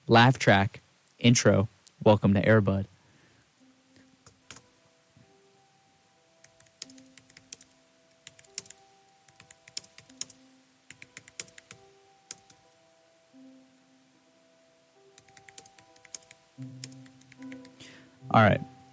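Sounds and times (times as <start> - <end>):
speech: 0.1 - 2.9, 18.3 - 18.7
typing on a computer keyboard: 4.2 - 4.6, 6.4 - 12.6, 15.2 - 17.8.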